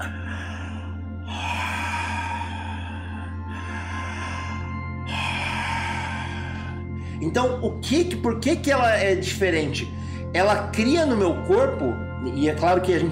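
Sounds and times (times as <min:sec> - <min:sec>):
person demonstrating rebirthing breathing with equal-length inhales and exhales: 0:00.0 - 0:07.8, 0:09.8 - 0:10.4
low hum: 0:00.0 - 0:10.2
speech: 0:07.2 - 0:13.0.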